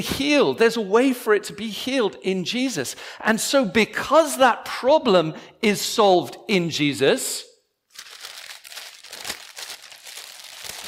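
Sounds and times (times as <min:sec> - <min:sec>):
speech: 0:00.0 - 0:07.5
wrapping paper being crinkled and crumpled: 0:07.9 - 0:10.8.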